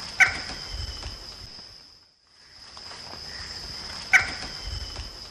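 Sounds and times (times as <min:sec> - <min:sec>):
Dromococcyx phasianellus alarm call in the Eastern Lowlands of South America: 0:00.2 - 0:01.2, 0:03.3 - 0:05.1.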